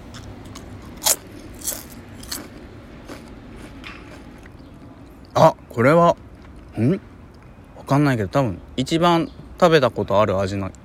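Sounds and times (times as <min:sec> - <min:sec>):
biting lightly salted Calbee potato chips: 0:00.0 - 0:04.6
speech: 0:05.4 - 0:06.2, 0:06.8 - 0:07.1, 0:07.9 - 0:10.8.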